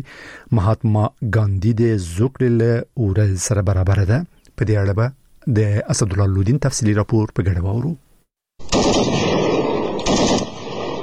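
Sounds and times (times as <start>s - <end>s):
speech: 0.0s - 8.0s
gunfire exchange between Afghan and Pakistani border soldiers: 8.6s - 11.0s.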